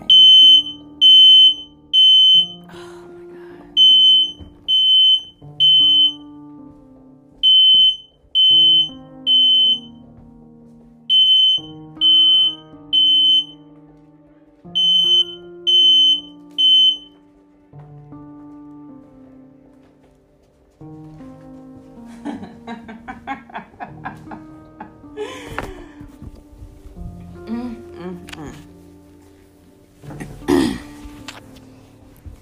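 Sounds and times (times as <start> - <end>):
smoke detector alarm at home set off by burning sage smoke: 0.0 - 2.6, 3.8 - 6.2, 7.4 - 10.0, 11.1 - 13.6, 14.8 - 17.1
laughter: 22.1 - 26.0.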